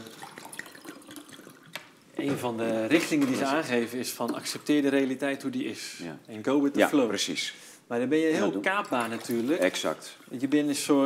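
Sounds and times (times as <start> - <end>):
water splashing and trickling into a glass: 0.0 - 1.8, 4.2 - 5.1, 8.6 - 9.9
speech: 2.2 - 11.0.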